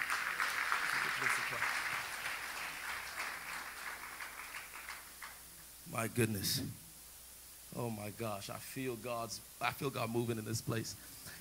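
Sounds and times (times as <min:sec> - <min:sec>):
audience applause: 0:00.0 - 0:05.4
speech: 0:05.9 - 0:06.8, 0:07.8 - 0:11.2.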